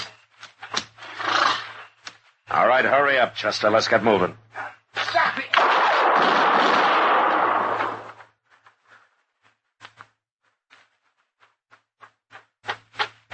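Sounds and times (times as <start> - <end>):
speech: 2.5 - 4.4
gunshot blast in an alley: 5.5 - 8.2.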